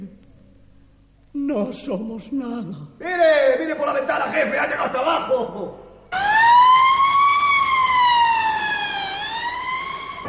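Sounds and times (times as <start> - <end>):
speech: 1.4 - 6.3
emergency vehicle siren wailing: 6.1 - 10.2.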